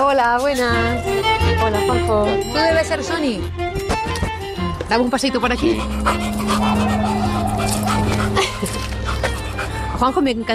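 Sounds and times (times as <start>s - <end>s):
speech: 0.1s - 4.2s, 4.9s - 9.2s, 10.0s - 10.5s
dog barking in excited yips and whimpering: 5.7s - 9.7s.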